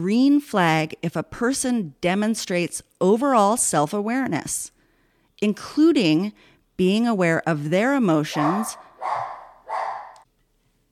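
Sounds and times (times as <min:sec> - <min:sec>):
speech: 0:00.0 - 0:04.8, 0:05.4 - 0:09.3
small pet dog barking: 0:08.4 - 0:10.2.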